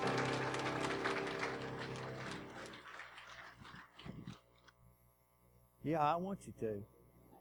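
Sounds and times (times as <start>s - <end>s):
crowd clapping: 0.0s - 4.6s
speech: 5.8s - 7.0s.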